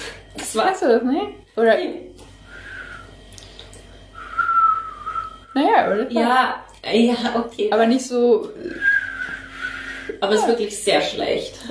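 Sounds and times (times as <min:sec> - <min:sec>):
speech: 0:00.5 - 0:02.1, 0:05.6 - 0:08.9, 0:10.2 - 0:11.6
person whistling a high note: 0:02.5 - 0:03.1, 0:04.2 - 0:05.5, 0:08.7 - 0:10.2.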